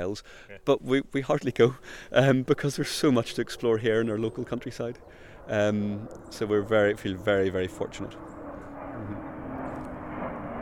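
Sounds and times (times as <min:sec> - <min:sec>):
speech: 0:00.0 - 0:08.4, 0:09.0 - 0:09.3
airplane engine roar passing overhead: 0:01.3 - 0:10.6.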